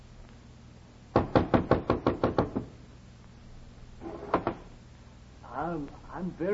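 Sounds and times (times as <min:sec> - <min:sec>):
sharp knocks on a door: 0:01.2 - 0:02.7
speech: 0:06.2 - 0:06.5.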